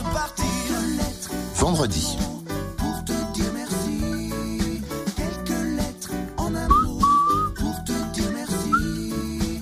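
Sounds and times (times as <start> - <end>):
full-band song from an album: 0.0 - 1.5, 2.2 - 9.5
speech: 1.6 - 2.4
whistled melodic phrases: 6.7 - 7.7, 8.5 - 9.1.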